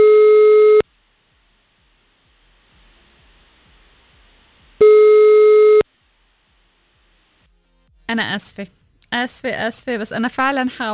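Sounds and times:
outgoing phone call ringback tone: 0.0 - 0.8, 4.8 - 5.8
speech: 8.1 - 10.9.

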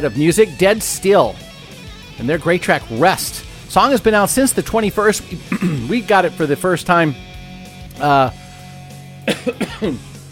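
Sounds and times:
speech: 0.0 - 1.5, 2.2 - 7.3, 8.0 - 8.4, 9.3 - 10.1
person coughing after biting their tongue: 5.3 - 6.0, 9.3 - 10.1.

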